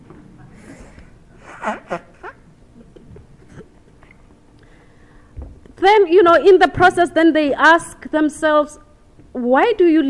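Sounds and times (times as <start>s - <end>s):
breathing: 0.5s - 1.1s, 4.6s - 5.4s
person blowing nose: 0.7s - 2.4s
speech: 1.6s - 2.1s, 5.8s - 8.8s, 9.4s - 10.0s.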